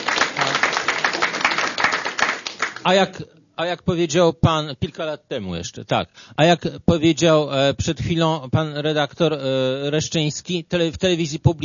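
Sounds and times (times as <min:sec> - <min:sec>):
audience applause: 0:00.0 - 0:02.9
speech: 0:02.8 - 0:11.6.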